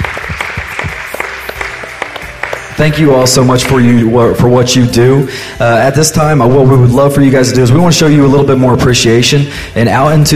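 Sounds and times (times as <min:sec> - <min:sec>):
audience applause: 0:00.0 - 0:03.1
speech: 0:02.8 - 0:10.3.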